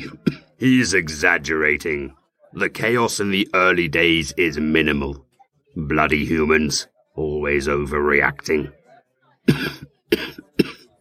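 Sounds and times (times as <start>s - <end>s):
harsh chesty coughs: 0.0s - 0.6s, 9.5s - 10.9s
speech: 0.1s - 5.2s, 5.8s - 8.8s, 9.5s - 10.7s.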